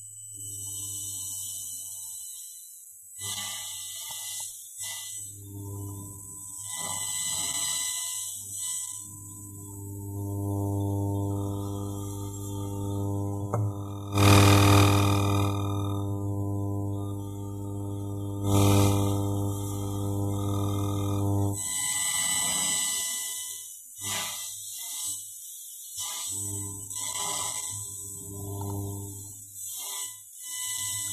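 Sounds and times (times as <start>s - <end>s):
electromagnetic interference hum from a phone and a laptop: 0.0s - 2.6s, 3.2s - 25.2s, 26.0s - 31.1s
harsh static bursts from electromagnetic interference: 9.6s - 21.6s.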